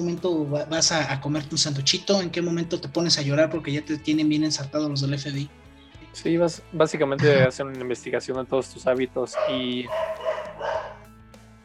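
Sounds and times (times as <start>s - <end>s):
speech: 0.0s - 10.2s
dog barking: 9.3s - 11.1s.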